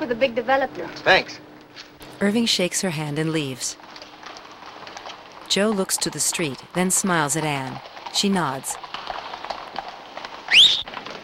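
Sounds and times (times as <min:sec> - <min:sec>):
speech: 0:00.0 - 0:03.9, 0:05.5 - 0:09.0
hooves of a horse-drawn carriage clip-clopping: 0:03.2 - 0:11.2
brief loud high squeal: 0:10.5 - 0:10.9.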